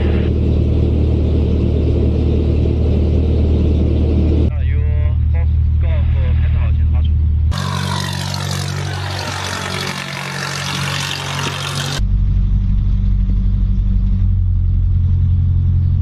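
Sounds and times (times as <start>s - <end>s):
light sport aircraft engine running after starting while the oil warms up: 0.0s - 15.9s
voices: 4.5s - 11.9s.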